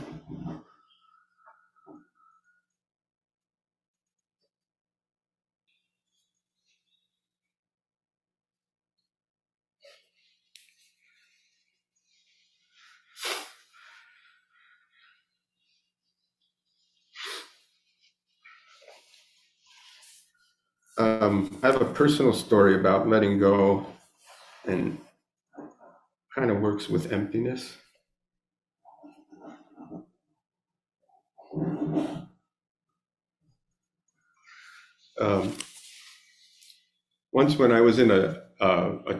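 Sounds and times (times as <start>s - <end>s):
sniffles: 12.9s - 14.2s
nose blowing: 13.1s - 13.7s
speech: 21.0s - 23.9s, 24.7s - 25.0s, 26.3s - 27.8s, 37.4s - 39.1s.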